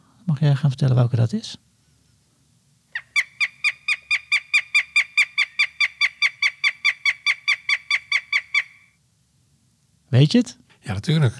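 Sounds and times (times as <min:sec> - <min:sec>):
speech: 0:00.3 - 0:01.6, 0:10.2 - 0:11.3
northern goshawk harsh nasal cackling calls: 0:02.9 - 0:09.0.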